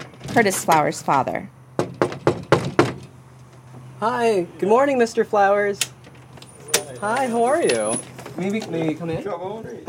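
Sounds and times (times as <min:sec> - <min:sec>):
speech: 0:00.4 - 0:01.6, 0:04.0 - 0:06.0, 0:07.0 - 0:09.8
knocking on a front door: 0:01.8 - 0:03.0.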